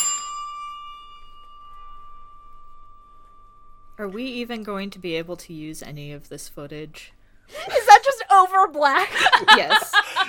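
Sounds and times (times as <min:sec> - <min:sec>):
doorbell chime: 0:00.0 - 0:04.3
speech: 0:04.0 - 0:07.8, 0:08.4 - 0:10.2
laughter: 0:09.0 - 0:10.2.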